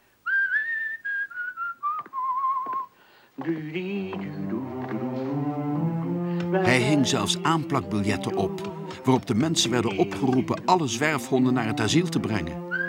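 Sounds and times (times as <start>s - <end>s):
person whistling a tune: 0.2s - 2.9s, 12.7s - 12.8s
speech: 3.4s - 5.6s, 6.5s - 12.6s
fuller lower musical tone: 4.2s - 12.8s.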